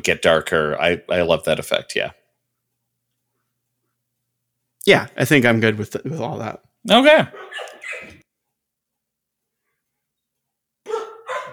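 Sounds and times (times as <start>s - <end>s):
speech: 0.0s - 2.2s, 4.8s - 8.2s
dogs barking: 7.1s - 8.2s, 10.9s - 11.5s.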